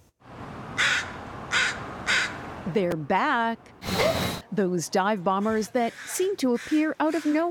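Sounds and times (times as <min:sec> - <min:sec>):
outdoor noise: 0:00.0 - 0:07.5
nesting crows cawing in West Vancouver: 0:00.8 - 0:02.4, 0:05.4 - 0:07.5
speech: 0:02.7 - 0:07.5.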